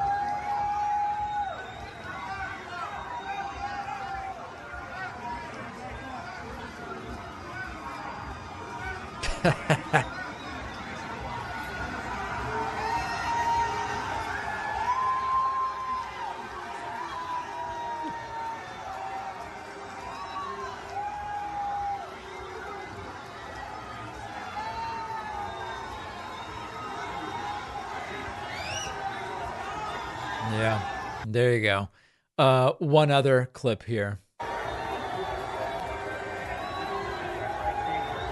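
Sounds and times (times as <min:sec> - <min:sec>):
college football stadium crowd booing and cheering: 0:00.0 - 0:31.3, 0:34.4 - 0:38.3
laughter: 0:09.2 - 0:10.3
speech: 0:09.4 - 0:10.2, 0:32.4 - 0:34.2.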